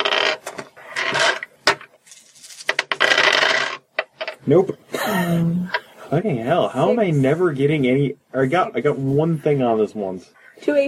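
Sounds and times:
dice rattling and clattering during a tabletop role-playing game: 0:00.0 - 0:04.4
speech: 0:04.5 - 0:10.8.

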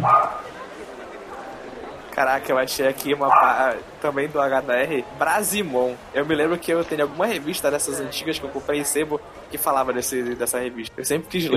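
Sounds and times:
dog barking: 0:00.0 - 0:00.5, 0:03.3 - 0:03.7
dog yapping: 0:00.0 - 0:00.5, 0:03.3 - 0:03.6
murmur: 0:00.0 - 0:11.5
speech: 0:02.2 - 0:11.5.

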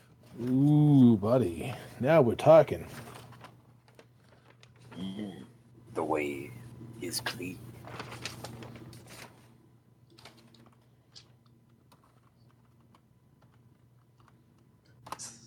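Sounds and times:
low steady hum: 0:00.0 - 0:15.4
speech: 0:00.4 - 0:03.1, 0:07.1 - 0:08.1
typing on a computer keyboard: 0:10.1 - 0:15.2.

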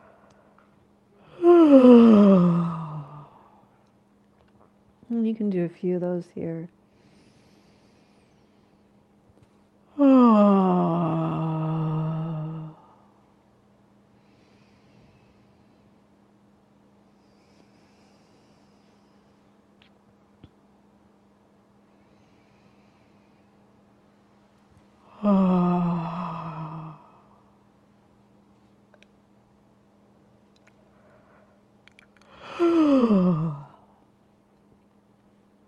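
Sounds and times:
faint steady hum: 0:00.0 - 0:35.6
person yawning with long voiced exhale: 0:01.2 - 0:03.6, 0:09.9 - 0:13.1, 0:25.1 - 0:27.4, 0:32.3 - 0:33.9
speech: 0:05.2 - 0:06.8.

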